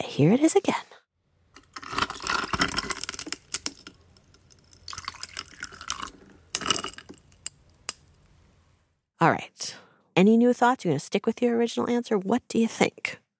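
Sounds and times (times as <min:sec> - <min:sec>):
speech: 0:00.0 - 0:00.9, 0:09.2 - 0:13.2
ice clinking and rattling against a cup: 0:01.8 - 0:07.5
water dripping: 0:03.5 - 0:06.5
water and ice poured from a jug into a cup: 0:04.3 - 0:07.0.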